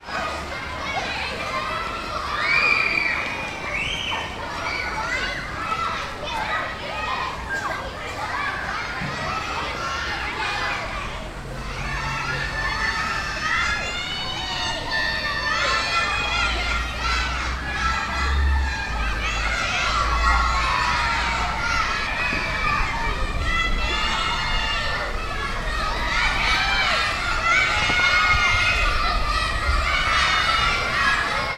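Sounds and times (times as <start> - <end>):
children playing in a school playground: 0.0 - 31.5.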